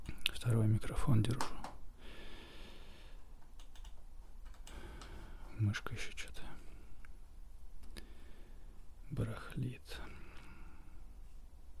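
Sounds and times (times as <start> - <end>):
faint hiss: 0.0 - 11.7
speech: 0.4 - 1.6, 5.6 - 6.3
typing on a computer keyboard: 3.6 - 4.8.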